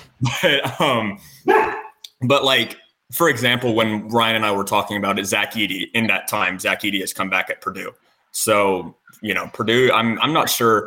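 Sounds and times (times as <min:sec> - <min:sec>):
speech: 0:00.2 - 0:10.8
dog barking: 0:01.4 - 0:02.0.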